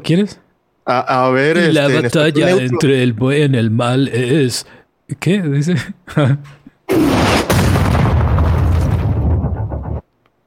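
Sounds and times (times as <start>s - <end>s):
speech: 0.0s - 7.4s
explosion sound effect with crackling blast and deep rumble: 6.9s - 10.0s.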